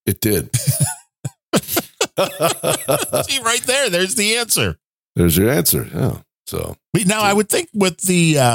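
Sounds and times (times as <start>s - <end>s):
speech: 0.1s - 0.9s, 2.2s - 8.5s
person coughing: 0.6s - 3.2s
laughter: 0.6s - 4.2s.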